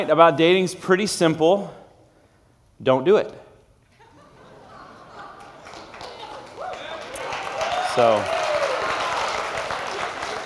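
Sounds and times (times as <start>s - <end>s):
speech: 0.0s - 1.8s, 2.8s - 3.4s, 8.0s - 8.4s
laughter: 3.9s - 7.4s
audience applause: 5.0s - 10.4s.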